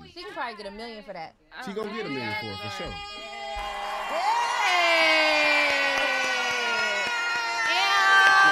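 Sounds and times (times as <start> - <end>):
speech: 0.2 - 3.3, 4.1 - 5.4
crowd of arriving guests cheering and whooping in a building: 3.0 - 8.5
people clapping: 3.6 - 8.5.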